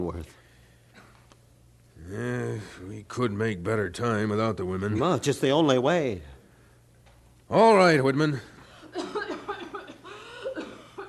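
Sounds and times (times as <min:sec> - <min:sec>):
speech: 0:00.0 - 0:00.4, 0:02.1 - 0:06.3, 0:07.5 - 0:09.0
woman coughing: 0:08.9 - 0:11.0.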